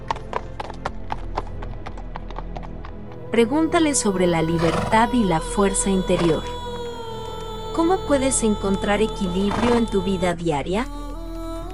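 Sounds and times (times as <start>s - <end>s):
horse hooves clip-clopping: 0.0s - 3.2s
low rumble: 0.0s - 11.7s
speech: 3.3s - 6.6s, 7.8s - 11.0s.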